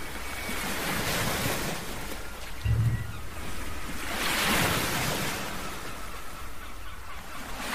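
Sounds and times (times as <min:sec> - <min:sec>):
ocean waves: 0:00.0 - 0:07.7
wind buffeting the microphone: 0:02.6 - 0:05.4.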